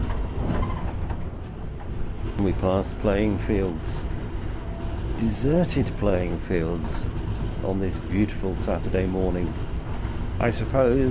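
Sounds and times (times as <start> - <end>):
train rushing through the Southern Railway station at Surbiton: 0.0 - 11.0
speech: 2.4 - 4.1, 5.2 - 9.7, 10.4 - 11.0.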